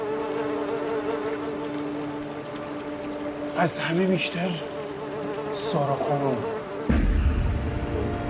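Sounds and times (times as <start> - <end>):
housefly buzzing: 0.0 - 8.2
speech: 3.6 - 4.7, 5.7 - 7.0.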